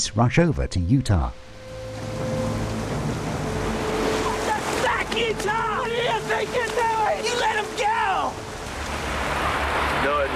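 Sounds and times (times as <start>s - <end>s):
speech: 0.0s - 1.5s, 10.0s - 10.3s
ocean surf waves breaking on a beach: 1.7s - 10.3s.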